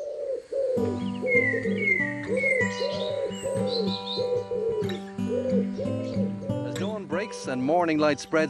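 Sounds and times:
repeated low bird cooing in a dawn chorus: 0:00.0 - 0:07.0
speech: 0:00.8 - 0:02.1, 0:07.2 - 0:08.4
higher whistled bird chirps and trills in a dawn chorus: 0:00.8 - 0:07.0.

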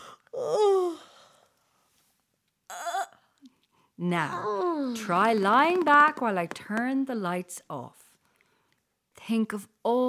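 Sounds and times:
mother giving an exaggerated demonstration yawn at bedtime: 0:00.0 - 0:01.3, 0:02.7 - 0:03.2
speech: 0:04.0 - 0:08.0, 0:09.3 - 0:10.0.

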